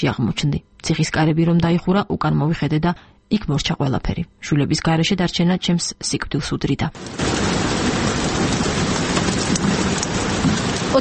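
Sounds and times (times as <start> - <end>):
speech: 0.0 - 8.3, 10.4 - 10.9
steady rain played from a loudspeaker mounted in a room: 7.0 - 10.9.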